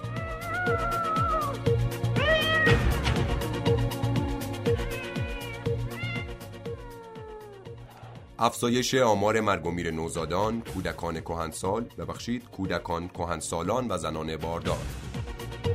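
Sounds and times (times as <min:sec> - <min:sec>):
cats meowing: 0:00.0 - 0:08.2
speech: 0:08.4 - 0:15.0.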